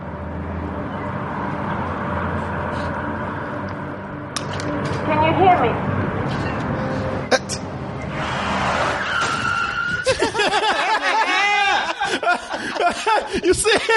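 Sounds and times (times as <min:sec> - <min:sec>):
car tires screeching in a film scene: 0:00.0 - 0:10.6
speech: 0:05.3 - 0:06.5, 0:13.2 - 0:13.9
laughter: 0:10.0 - 0:13.9.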